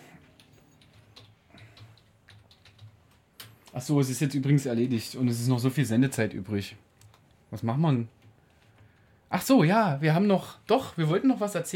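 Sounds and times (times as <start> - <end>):
low hum: 0.0 - 11.7
typing on a computer keyboard: 0.2 - 3.9, 6.9 - 7.4
speech: 3.7 - 6.9, 7.5 - 8.2, 9.3 - 11.7.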